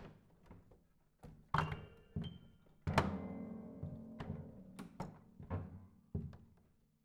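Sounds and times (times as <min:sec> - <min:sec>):
piano panels slapping sloppily during piano destruction: 0:01.7 - 0:06.5.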